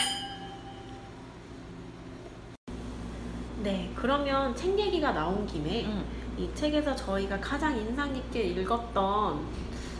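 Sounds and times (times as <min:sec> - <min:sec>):
wine glasses clinking in a toast: 0:00.0 - 0:01.1
steady low hum: 0:00.0 - 0:09.9
speech: 0:03.6 - 0:09.8.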